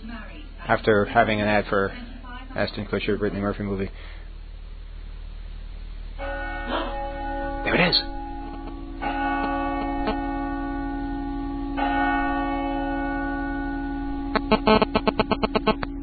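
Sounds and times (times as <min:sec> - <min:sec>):
speech: 0:00.7 - 0:04.2, 0:07.9 - 0:08.2
church bells ringing: 0:06.2 - 0:14.5
rapid metallic pulses: 0:06.2 - 0:16.0.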